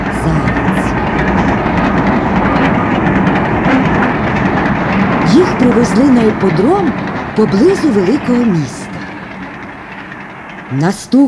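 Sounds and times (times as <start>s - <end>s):
train rolling along: 0.0s - 11.2s
speech: 0.2s - 0.5s, 5.4s - 8.8s, 10.7s - 11.2s.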